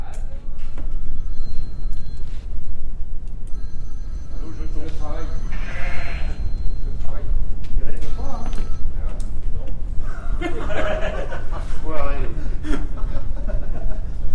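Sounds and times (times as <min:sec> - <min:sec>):
general bustle of a busy shed: 0:00.0 - 0:14.3
steady buzzing hum in a shearing shed: 0:00.0 - 0:14.3
ewes bleating during shearing: 0:05.5 - 0:06.4
laughter: 0:10.0 - 0:14.3.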